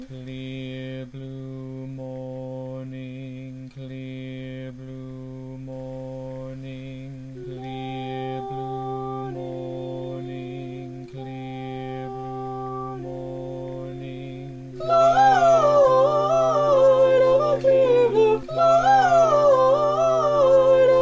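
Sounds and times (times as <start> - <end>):
choir singing: 0.0 - 21.0
descant soprano singing: 6.4 - 21.0.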